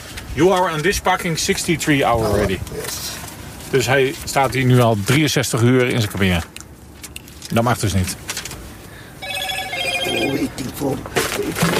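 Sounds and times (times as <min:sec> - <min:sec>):
speech: 0:00.4 - 0:06.5, 0:07.5 - 0:08.3, 0:10.8 - 0:11.7
telephone ringing inside a truck cab: 0:09.2 - 0:10.7.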